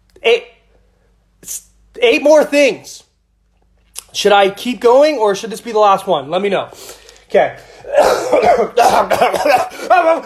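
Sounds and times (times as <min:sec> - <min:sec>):
speech: 0:00.2 - 0:00.6, 0:01.4 - 0:03.1, 0:04.1 - 0:10.2
person coughing: 0:07.8 - 0:10.2.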